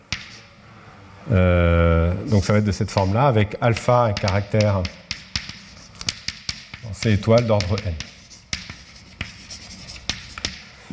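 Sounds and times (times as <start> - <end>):
scratchy writing on a board: 0.1 - 0.6, 2.3 - 10.8
speech: 1.2 - 5.0, 7.0 - 8.1
sharp taps on a board: 3.8 - 9.4.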